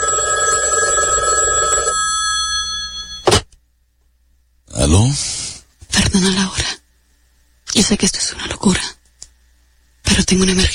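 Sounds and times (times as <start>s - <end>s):
telephone ringing with electronic bell tone: 0.0s - 3.4s
speech: 4.9s - 5.4s, 6.1s - 6.8s, 7.8s - 9.0s, 10.3s - 10.7s.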